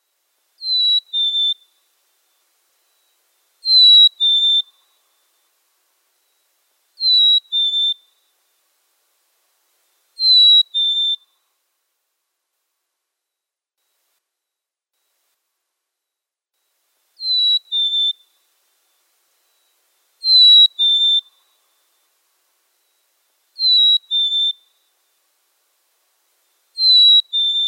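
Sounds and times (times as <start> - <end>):
black-capped chickadee chirping: 0.6 - 1.6, 3.7 - 4.7, 7.0 - 8.0, 10.2 - 11.2, 17.2 - 18.2, 20.2 - 21.3, 23.6 - 24.6, 26.8 - 27.6.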